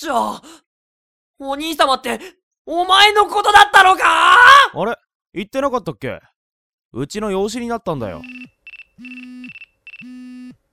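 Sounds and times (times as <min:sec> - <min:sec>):
speech: 0:00.0 - 0:00.6, 0:01.4 - 0:06.3, 0:06.9 - 0:10.6
electronic mobile phone ringtone for incoming call: 0:08.2 - 0:10.6.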